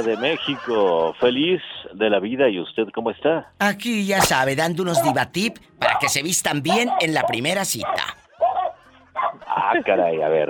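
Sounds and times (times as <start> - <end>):
laughter: 0.0 - 1.6
speech: 0.0 - 8.2, 9.3 - 10.4
dog barking loudly: 4.9 - 9.5.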